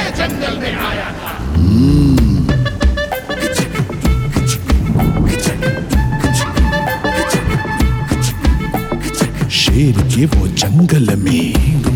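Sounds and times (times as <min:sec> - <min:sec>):
speech: 0:00.2 - 0:02.2, 0:10.2 - 0:11.4
vehicle rumbling: 0:01.1 - 0:10.6
engine revving: 0:01.4 - 0:11.9
short horn-like tones: 0:02.1 - 0:09.7.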